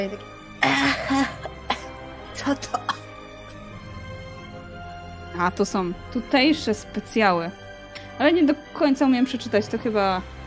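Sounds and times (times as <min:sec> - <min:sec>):
speech: 0:00.0 - 0:01.4, 0:02.4 - 0:02.8, 0:05.4 - 0:07.6, 0:08.2 - 0:10.4
rough raspy coughs after strong drink: 0:00.6 - 0:03.2.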